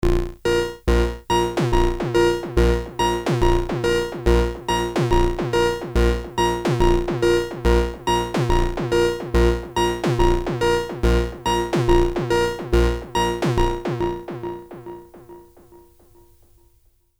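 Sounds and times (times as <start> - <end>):
Moog synthesizer long clean delay: 0.0 - 16.3.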